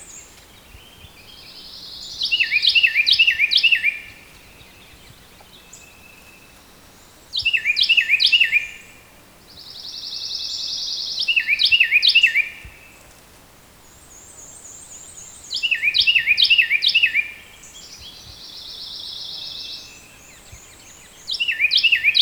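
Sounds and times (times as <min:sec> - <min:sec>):
Carolina wren singing repeated whistled triplets: 0:00.0 - 0:06.8, 0:07.4 - 0:08.9, 0:09.6 - 0:12.8, 0:14.1 - 0:22.1.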